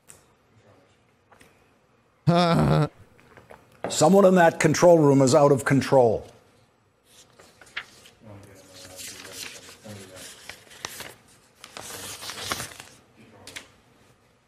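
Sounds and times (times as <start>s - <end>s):
speech: 2.3s - 2.9s, 3.9s - 6.3s
low murmured voice: 2.3s - 3.0s
sheet of paper crinkling as it is folded in half: 7.1s - 13.7s.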